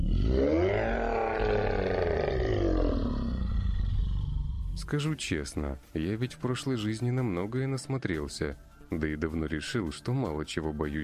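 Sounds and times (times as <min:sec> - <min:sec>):
monster's deep growling roar: 0:00.0 - 0:04.8
speech: 0:04.9 - 0:11.0.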